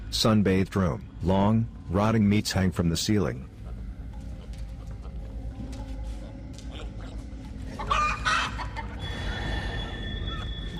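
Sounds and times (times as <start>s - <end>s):
low ambient hum: 0.0s - 10.7s
thin tonal whine: 0.0s - 10.7s
speech: 0.1s - 3.5s
chicken clucking and squawking: 6.7s - 9.0s.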